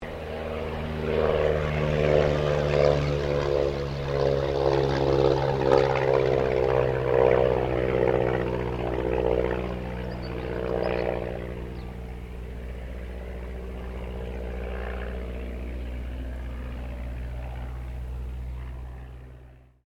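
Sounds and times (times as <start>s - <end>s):
1939 Ryan STM-S2 aircraft passing: 0.0s - 19.8s.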